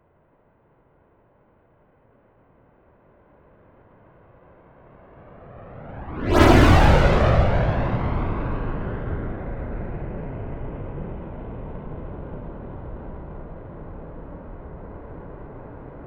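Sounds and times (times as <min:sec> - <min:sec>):
Rafale military jet flyby: 0:05.2 - 0:10.2.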